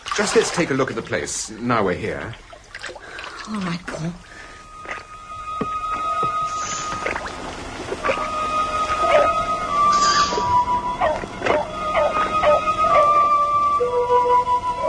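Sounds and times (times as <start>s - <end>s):
steady low hum: 0.0s - 14.8s
speech: 0.2s - 2.5s, 3.4s - 4.3s
dog giving high whining yelps and short barks: 11.0s - 13.3s.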